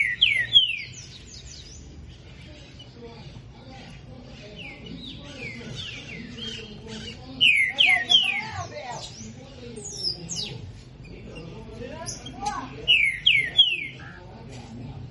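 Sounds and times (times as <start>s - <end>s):
green-winged saltator singing clear descending whistled phrases: 0.0s - 1.9s, 4.4s - 10.6s, 12.0s - 14.2s.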